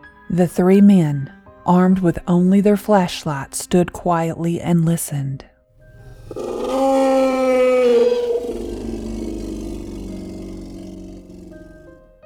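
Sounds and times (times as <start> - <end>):
speech: 0.3 - 5.5
animal howl: 5.8 - 12.1.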